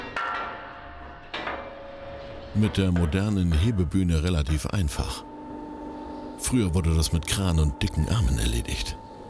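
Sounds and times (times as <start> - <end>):
hammer striking steel brake blocks of a railway wagon: 0.0 - 5.3
speech: 2.6 - 5.3, 6.4 - 9.0.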